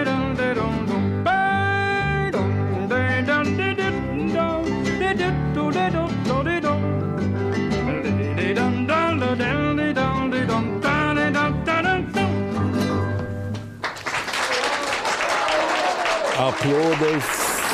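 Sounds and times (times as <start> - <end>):
song with singing and instruments: 0.0 - 13.6
audience applause: 13.8 - 17.7
man speaking: 16.4 - 17.7.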